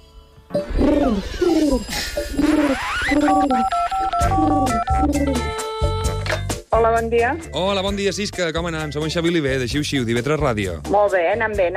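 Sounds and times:
speech: 0.5 - 5.6, 6.7 - 11.7
keypad-like tones: 2.2 - 5.6
electronic telephone dialing tones: 2.4 - 5.4.

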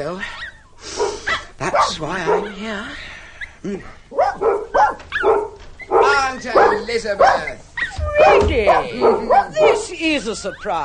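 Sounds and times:
speech: 0.0 - 0.9, 1.6 - 4.5, 6.3 - 10.8
several dogs barking: 1.0 - 2.8, 4.1 - 10.8.

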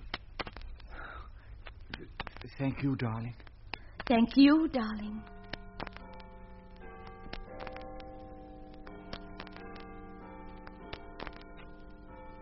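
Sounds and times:
speech: 2.6 - 3.5, 4.1 - 5.4
clock chiming midnight: 4.4 - 12.3.

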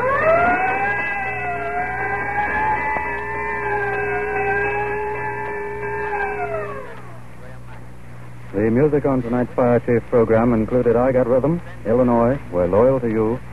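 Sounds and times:
fire engine siren wailing: 0.0 - 7.3
low hum: 0.0 - 13.5
speech: 8.8 - 13.5.

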